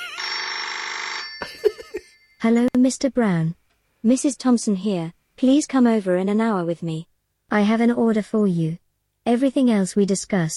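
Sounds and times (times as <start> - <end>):
telephone ringing with electronic trill: 0.0 - 2.7
speech: 2.4 - 10.5.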